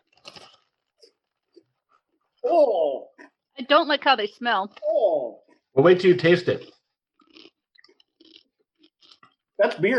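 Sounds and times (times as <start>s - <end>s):
crunching beer cheese flavoured snacks: 0.0s - 1.6s, 6.4s - 9.6s
speech: 2.5s - 3.1s, 3.7s - 6.7s, 9.6s - 9.9s.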